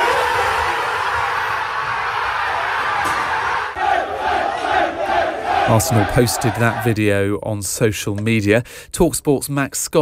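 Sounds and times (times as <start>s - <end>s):
football squad cheering and shouting on learning they are league champions: 0.0s - 7.0s
speech: 5.7s - 9.9s.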